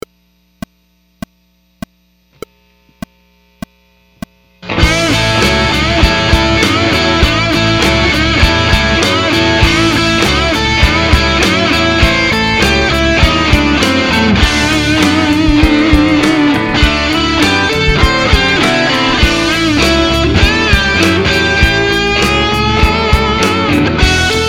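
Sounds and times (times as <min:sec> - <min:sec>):
12 bar blues in A: 0:04.7 - 0:24.4.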